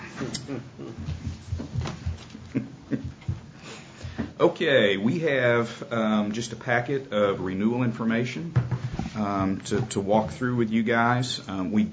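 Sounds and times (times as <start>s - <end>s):
speech: 0.2s - 3.0s, 3.7s - 11.9s
clunks, knocks and rattles of a new chair being adjusted: 1.0s - 3.5s, 8.5s - 10.4s.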